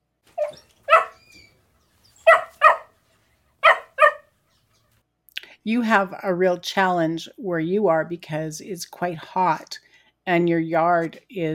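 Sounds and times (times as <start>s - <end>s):
puppy barking in high-pitched yaps: 0.4s - 1.4s, 2.2s - 3.0s, 3.6s - 4.3s
speech: 5.6s - 11.5s.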